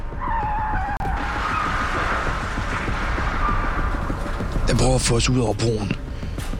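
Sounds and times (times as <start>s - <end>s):
car tire squeal after being rammed from the side: 0.0s - 4.8s
car screeching and rumbling: 0.0s - 6.5s
speech: 4.8s - 6.1s.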